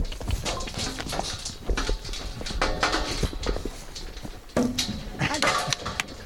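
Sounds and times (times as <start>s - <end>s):
cattle hooves climbing a hollow trailer ramp: 0.0s - 6.2s
people's voices: 5.1s - 6.2s.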